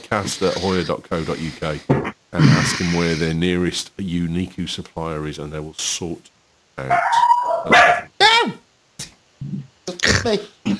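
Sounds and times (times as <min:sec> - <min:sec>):
speech: 0:00.1 - 0:08.0, 0:10.2 - 0:10.7
dog barking and yipping with a low growl-like bark: 0:06.9 - 0:08.2.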